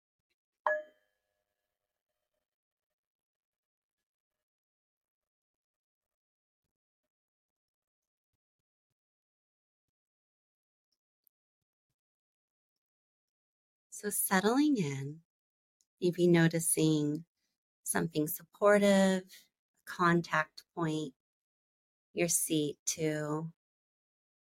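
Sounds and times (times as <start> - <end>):
meditation bell struck to start a guided meditation: 0.7 - 1.0
speech: 14.0 - 15.2, 16.0 - 21.2, 22.2 - 23.6.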